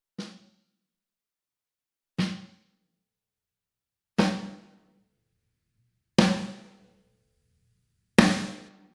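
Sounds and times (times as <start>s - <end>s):
snare drums: 4.2s - 4.9s, 6.2s - 6.8s, 8.2s - 8.9s.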